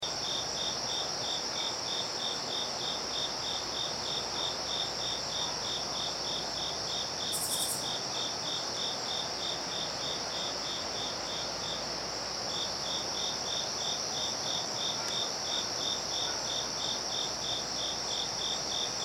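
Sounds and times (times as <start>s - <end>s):
Japanese burrowing cricket: 0.0s - 19.0s.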